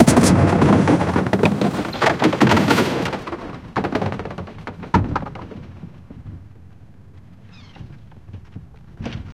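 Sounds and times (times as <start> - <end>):
loud explosion: 0.0 - 3.3.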